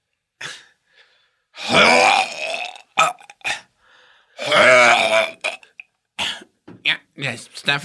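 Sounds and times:
person vocally imitating vomiting with gurgling retches: 1.6s - 3.7s, 4.4s - 6.4s
speech: 7.3s - 7.8s.

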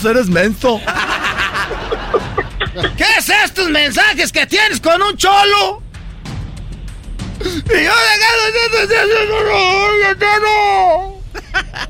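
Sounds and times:
speech: 0.0s - 1.0s, 2.1s - 5.8s, 7.4s - 11.1s
laughter: 0.7s - 3.4s, 7.4s - 10.0s, 11.2s - 11.8s
person crying: 2.2s - 3.0s, 7.4s - 10.0s.

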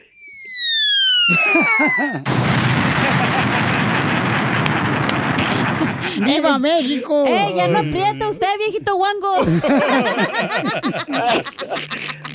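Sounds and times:
falling whistle with a warbling tone: 0.0s - 3.2s
loud explosion with roaring rumble: 0.1s - 6.4s
speech: 1.3s - 5.2s, 5.8s - 12.2s
laughter: 1.3s - 8.3s, 9.3s - 12.3s.

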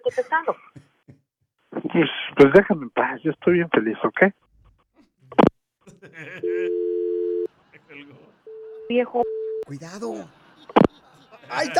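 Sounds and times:
speech: 0.1s - 0.8s, 1.9s - 4.4s, 8.9s - 10.4s, 11.5s - 11.7s
laughter: 5.8s - 9.2s, 9.8s - 11.7s
telephone dial tone during a call to a radio listener: 6.4s - 7.5s, 8.5s - 9.7s.

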